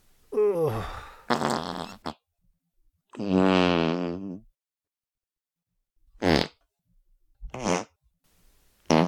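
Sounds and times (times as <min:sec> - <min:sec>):
farts: 0:01.3 - 0:02.2, 0:03.1 - 0:04.5, 0:06.2 - 0:06.6, 0:07.5 - 0:08.0, 0:08.8 - 0:09.0.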